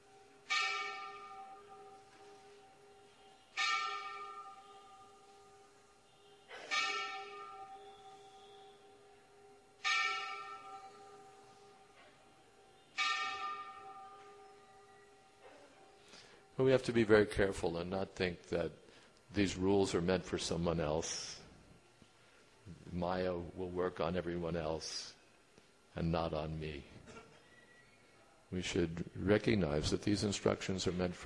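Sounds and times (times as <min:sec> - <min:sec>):
large bell tolling: 0:00.0 - 0:18.2
speech: 0:16.6 - 0:21.4, 0:23.0 - 0:25.2, 0:26.0 - 0:27.1, 0:28.5 - 0:31.2.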